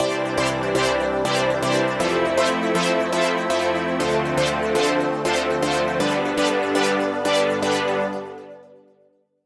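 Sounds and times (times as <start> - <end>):
synthesizer chords: 0.0 - 8.9.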